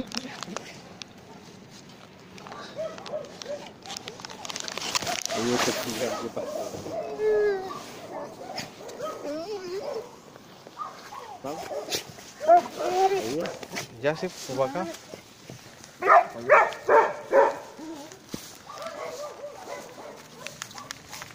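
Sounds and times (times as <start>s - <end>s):
dogs yipping and whimpering: 2.5s - 13.6s, 16.0s - 21.0s
speech: 5.4s - 7.5s, 13.3s - 15.1s.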